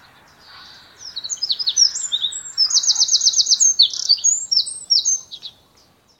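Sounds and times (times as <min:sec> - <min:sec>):
Eurasian wren song with rattling trill: 0:00.0 - 0:06.1.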